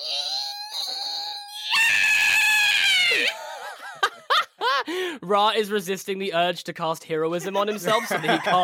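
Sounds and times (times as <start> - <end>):
woman vocally imitating the scream of a tusked furred creature: 0.0 - 3.5
speech: 5.3 - 8.6
laughter: 7.4 - 8.6.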